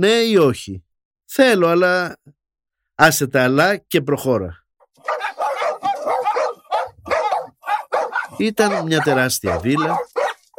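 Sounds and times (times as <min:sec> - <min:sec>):
speech: 0:00.0 - 0:02.4, 0:03.0 - 0:05.2, 0:08.4 - 0:10.5
dogs barking fiercely at a huge villa surrounded by railings: 0:05.0 - 0:10.5.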